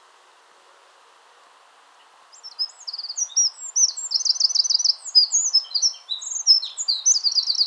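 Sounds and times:
faint low background hiss: 0.0s - 7.6s
Eurasian wren Troglodytes troglodytes singing: 2.3s - 7.6s.

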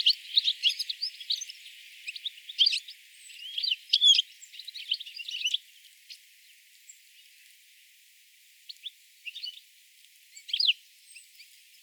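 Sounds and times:
European Goldfinch Carduelis carduelis twittering calls: 0.0s - 5.6s.

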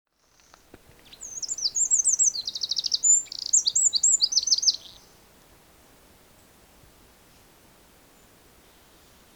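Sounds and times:
faint background hiss: 0.1s - 9.3s
Eurasian wren Troglodytes troglodytes singing: 0.2s - 5.1s.

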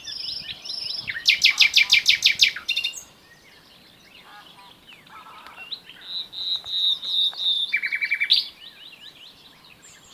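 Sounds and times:
common nightingale Luscinia megarhynchos singing: 0.0s - 10.1s.

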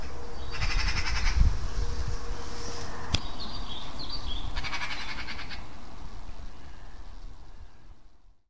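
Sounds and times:
constant low rumbling noise: 0.0s - 8.2s
Eurasian magpie Pica pica rattling chatter: 0.5s - 1.4s, 4.6s - 5.7s.

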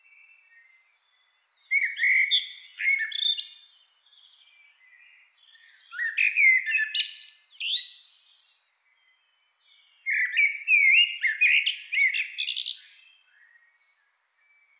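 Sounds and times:
Turdus merula common blackbird song: 0.0s - 14.7s.

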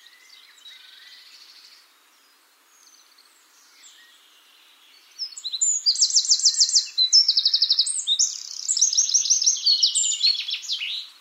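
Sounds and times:
Eurasian wren Troglodytes troglodytes song with ringing trills: 5.0s - 11.1s.

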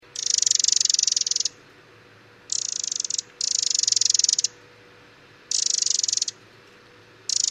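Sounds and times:
Eurasian wren Troglodytes troglodytes churring: 0.0s - 1.6s, 2.5s - 4.6s, 5.5s - 6.4s, 7.3s - 7.4s
faint steady hum: 0.0s - 7.4s.

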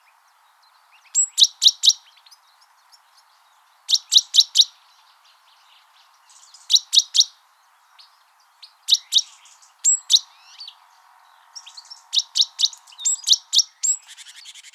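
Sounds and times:
great tit call series of quick high metallic chirps: 1.0s - 3.3s, 6.0s - 7.3s, 8.0s - 10.8s, 11.5s - 14.7s.

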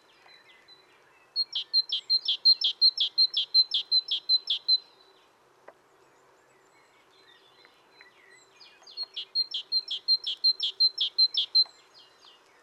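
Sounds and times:
great tit Parus major singing: 1.3s - 5.0s, 6.8s - 12.6s.

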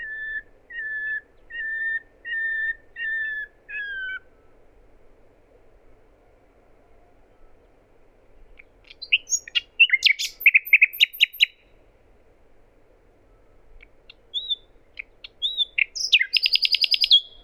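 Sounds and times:
common nightingale Luscinia megarhynchos singing: 0.0s - 4.6s, 8.4s - 11.7s, 13.3s - 17.4s.

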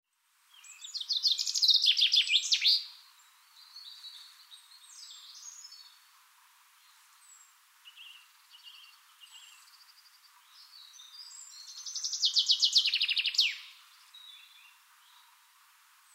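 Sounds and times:
common chaffinch Fringilla coelebs chirps and twittering: 0.5s - 6.0s, 6.8s - 15.3s.

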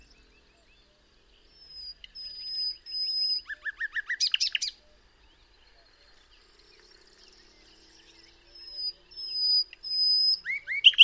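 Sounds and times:
common nightingale song Luscinia megarhynchos: 0.0s - 11.0s.

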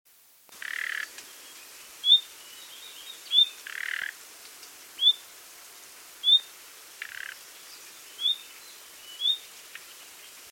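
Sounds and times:
common nightingale Luscinia megarhynchos giving sharp whistled calls: 0.6s - 4.0s, 5.0s - 5.2s, 6.2s - 10.1s.

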